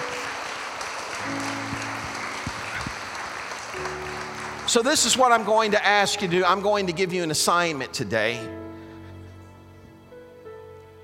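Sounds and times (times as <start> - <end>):
audience applauding: 0.0 - 7.0
speech: 4.7 - 8.6.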